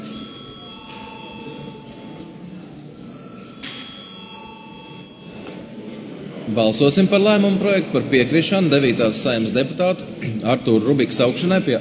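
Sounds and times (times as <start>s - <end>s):
parliament chamber bell ringing to call a vote: 0.0s - 6.1s
low murmur: 0.0s - 9.1s
speech: 6.5s - 11.8s.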